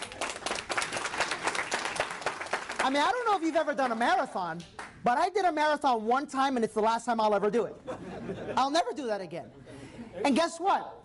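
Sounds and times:
small audience clapping: 0:00.0 - 0:05.0
speech: 0:02.9 - 0:11.0
laughter: 0:07.8 - 0:08.8.

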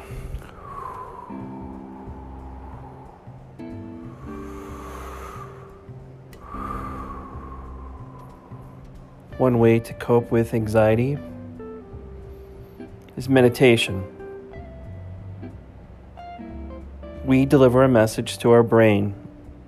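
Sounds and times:
slow airy exhaling breath: 0:00.0 - 0:09.3
steady low droning tones: 0:00.0 - 0:19.6
speech: 0:09.4 - 0:11.3, 0:13.2 - 0:14.2, 0:17.3 - 0:19.2.

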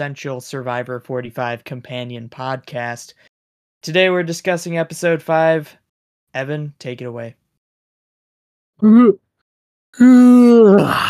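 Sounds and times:
speech: 0:00.0 - 0:07.4, 0:08.8 - 0:09.2, 0:10.0 - 0:11.0
person yawning loudly with a breathy exhale: 0:08.8 - 0:09.2, 0:10.0 - 0:11.0
short voiced groan: 0:08.8 - 0:09.2, 0:10.0 - 0:11.0.

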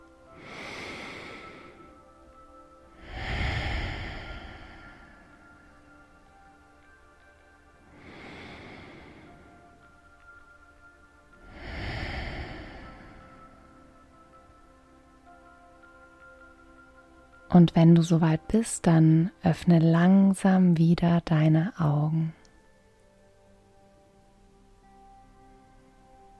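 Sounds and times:
deep breaths through the nose: 0:00.4 - 0:02.2, 0:02.9 - 0:05.7, 0:07.9 - 0:09.9, 0:11.4 - 0:13.7
speech: 0:17.5 - 0:22.4.

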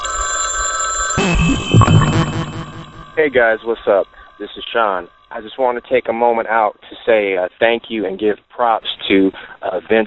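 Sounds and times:
telephone ringing with a buzzy electronic tone: 0:00.0 - 0:03.2
speech: 0:03.2 - 0:10.0.

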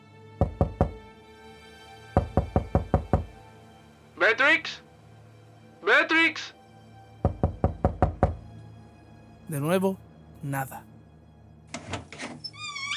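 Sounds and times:
sharp knocking on a wooden door: 0:00.4 - 0:01.1, 0:02.2 - 0:03.4, 0:07.2 - 0:08.5
man calling out loudly: 0:04.2 - 0:04.8, 0:05.8 - 0:06.6
speech: 0:04.2 - 0:04.8, 0:05.8 - 0:06.6, 0:09.5 - 0:10.9.

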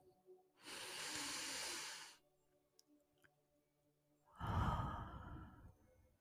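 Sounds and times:
long airy deep inhale: 0:00.6 - 0:02.2, 0:04.4 - 0:05.7.

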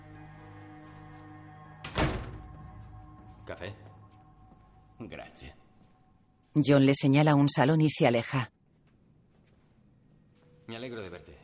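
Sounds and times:
door closing thunk: 0:01.8 - 0:02.5
speech: 0:03.5 - 0:03.9, 0:05.0 - 0:05.6, 0:06.6 - 0:08.5.

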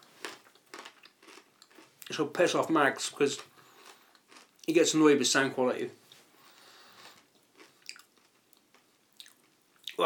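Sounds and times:
man biting and chewing crunchy pork scratchings: 0:00.0 - 0:02.1, 0:03.4 - 0:04.7, 0:06.6 - 0:10.0
speech: 0:02.1 - 0:03.5, 0:04.7 - 0:06.0.

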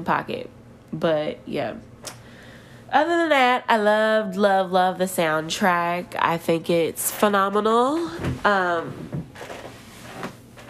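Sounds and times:
speech: 0:00.0 - 0:01.9, 0:02.9 - 0:09.5
rustles and shifting noises as someone moves their weight: 0:08.0 - 0:10.6
chair seat squeaking as someone shifts: 0:09.1 - 0:10.6.

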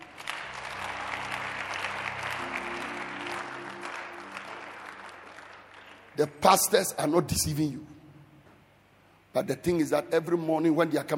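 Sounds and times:
large congregation clapping: 0:00.0 - 0:06.9
sustained low organ-like notes: 0:00.0 - 0:08.4
speech: 0:06.2 - 0:07.9, 0:09.4 - 0:11.1.

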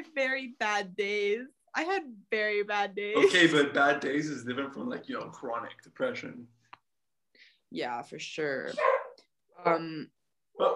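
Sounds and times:
speech: 0:00.2 - 0:06.6, 0:07.7 - 0:09.0, 0:09.6 - 0:10.7
dog barking: 0:08.8 - 0:09.2, 0:10.6 - 0:10.7.

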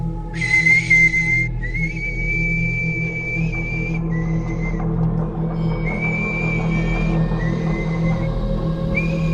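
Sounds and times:
steady low droning hum: 0:00.0 - 0:09.3
short high whistle and longer sustained whistle: 0:00.3 - 0:05.0, 0:05.6 - 0:09.3.

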